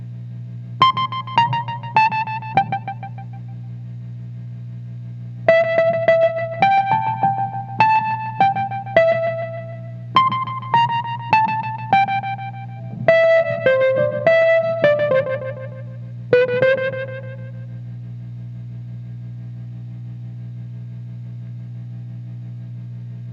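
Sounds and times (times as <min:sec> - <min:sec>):
Wurlitzer: 0:00.8 - 0:03.2, 0:05.5 - 0:17.5.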